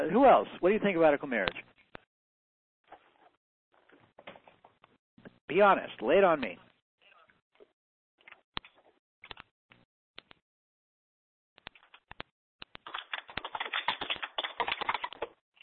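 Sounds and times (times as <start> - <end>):
speech: 0.1 - 1.7, 5.5 - 6.6
typing on a computer keyboard: 12.7 - 15.4.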